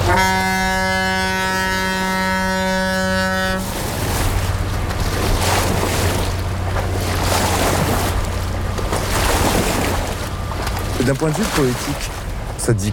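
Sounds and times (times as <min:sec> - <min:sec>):
large barge horn blast: 0:00.0 - 0:03.8
large barge engine drone: 0:00.0 - 0:12.9
water rushing and churning in a barge wake: 0:00.0 - 0:12.9
speech: 0:00.2 - 0:00.4, 0:11.1 - 0:12.9.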